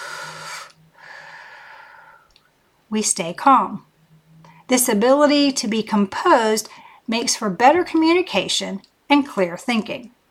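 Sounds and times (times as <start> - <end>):
deep breath taken slowly: 0.0 - 2.4, 6.7 - 7.1
speech: 2.9 - 3.9, 4.7 - 10.2.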